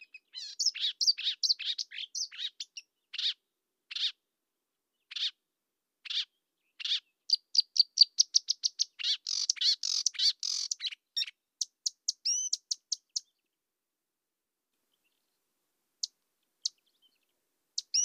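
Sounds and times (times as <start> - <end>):
marsh warbler Acrocephalus palustris palustris song: 0.0 - 4.2, 5.0 - 5.4, 6.0 - 13.5, 16.0 - 18.0.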